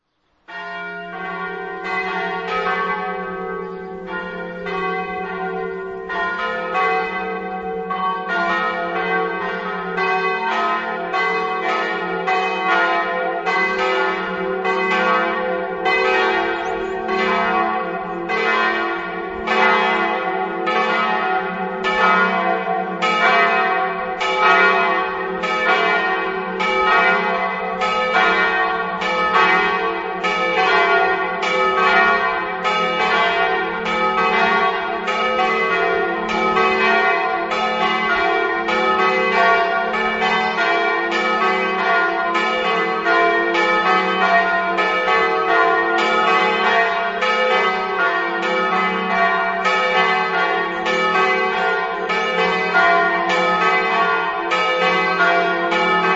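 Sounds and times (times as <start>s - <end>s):
bells ringing: 0.5s - 56.1s.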